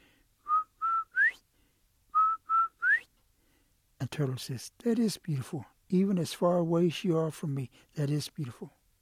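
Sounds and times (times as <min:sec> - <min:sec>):
person whistling a quail-like call: 0:00.5 - 0:01.4, 0:02.1 - 0:03.1
speech: 0:04.1 - 0:08.8.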